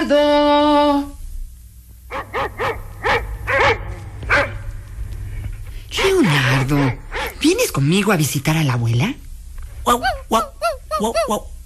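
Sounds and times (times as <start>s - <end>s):
speech: 0.1s - 1.2s, 7.8s - 9.2s, 9.8s - 11.5s
dogs barking angrily: 2.1s - 4.7s, 6.0s - 7.4s.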